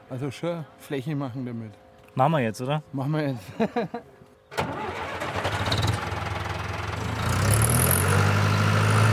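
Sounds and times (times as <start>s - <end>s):
speech: 0.1s - 4.8s
laughter: 3.4s - 4.2s
tractor engine running while turning in a field plot planting potatoes: 4.6s - 9.0s.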